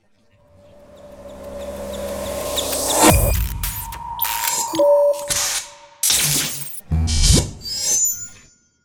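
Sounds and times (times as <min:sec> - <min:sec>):
rhythmic modern background music for a video logo: 0:00.5 - 0:06.6.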